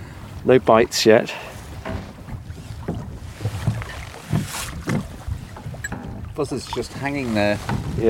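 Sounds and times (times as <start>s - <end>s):
low water sloshing against small boat hull on a loch: 0.0s - 8.0s
speech: 0.4s - 1.5s, 6.4s - 8.0s
hollow knocks against small boat hull on a loch in Assynt Scotland: 1.8s - 6.4s.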